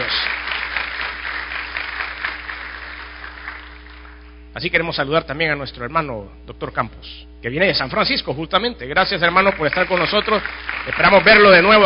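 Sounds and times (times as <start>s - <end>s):
audience applauding: 0.0s - 4.4s, 9.2s - 11.8s
speech: 4.6s - 11.8s.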